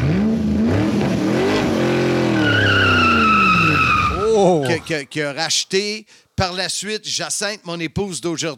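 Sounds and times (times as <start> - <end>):
Porsche 924 sports car engine revving: 0.0 - 4.1
tires screeching: 0.0 - 5.0
speech: 4.8 - 8.5.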